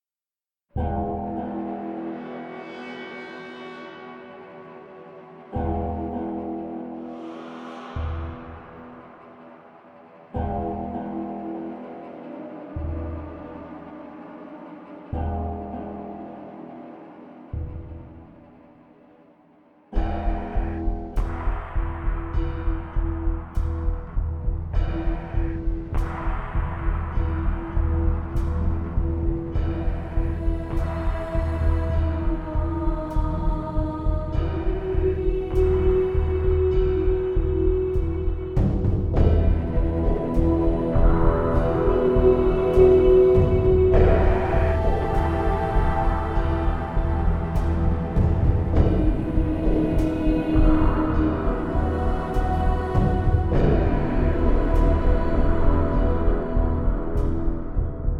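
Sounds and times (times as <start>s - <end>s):
mechanical hymn-like music: 0.8s - 58.1s.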